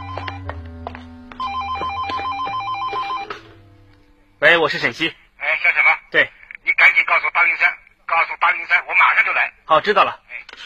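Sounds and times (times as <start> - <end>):
office telephone ringing with trilling electronic warble: 0.0 - 0.6, 1.3 - 3.8
low room hum: 0.0 - 8.3
speech: 4.4 - 10.6.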